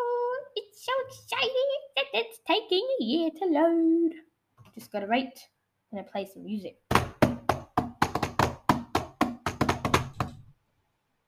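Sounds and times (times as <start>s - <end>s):
speech: 1.4s - 6.8s
hands drumming on a computer: 6.9s - 10.5s.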